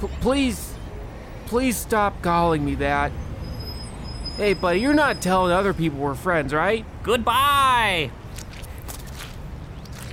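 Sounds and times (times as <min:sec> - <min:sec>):
speech: 0:00.0 - 0:00.7, 0:01.5 - 0:03.2, 0:04.4 - 0:08.2
squelching footsteps in soggy boots: 0:08.2 - 0:10.1.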